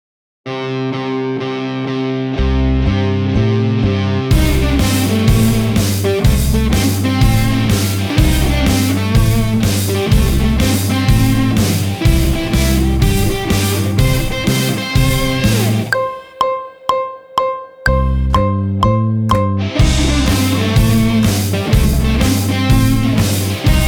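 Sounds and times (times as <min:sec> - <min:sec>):
electric guitar: 0:00.5 - 0:16.3, 0:18.0 - 0:23.8
drums: 0:04.3 - 0:16.3, 0:19.3 - 0:23.8.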